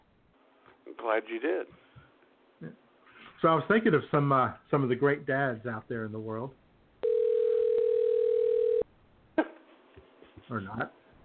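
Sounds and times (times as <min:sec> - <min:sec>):
speech: 0:00.9 - 0:01.8, 0:02.6 - 0:02.8, 0:03.4 - 0:06.6, 0:10.5 - 0:11.0
telephone dial tone: 0:07.0 - 0:08.8.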